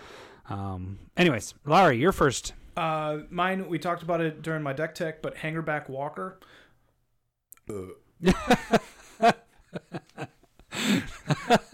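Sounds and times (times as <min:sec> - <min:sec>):
speech: 0:00.5 - 0:06.6, 0:07.7 - 0:10.1
loud burp into the microphone: 0:07.6 - 0:08.1
people chuckling and laughing: 0:08.2 - 0:11.7.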